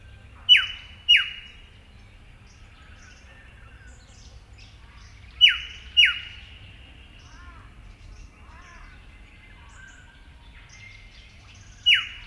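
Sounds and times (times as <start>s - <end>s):
Eastern yellow robin Eopsaltria australis calling: 0.0s - 1.7s, 2.5s - 6.6s, 7.2s - 12.2s.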